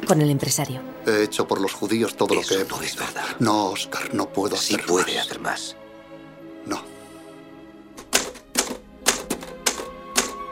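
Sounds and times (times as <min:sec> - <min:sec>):
speech: 0:00.1 - 0:05.8, 0:06.6 - 0:06.9
woman typing on a typewriter: 0:08.0 - 0:10.4.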